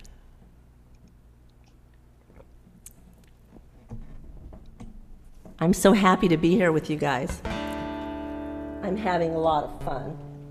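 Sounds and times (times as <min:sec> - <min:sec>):
low steady hum: 0:00.0 - 0:10.4
person sipping water with wet clicks and gulps: 0:02.2 - 0:03.5
speech: 0:05.6 - 0:07.5, 0:08.9 - 0:10.3.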